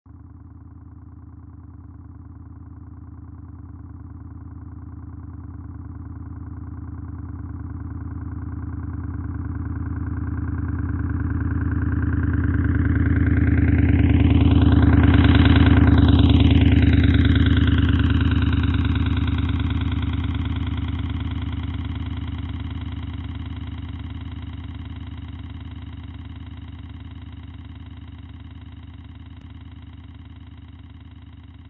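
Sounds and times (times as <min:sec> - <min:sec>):
motorcycle riding at 30 km/h: 0:09.1 - 0:31.6.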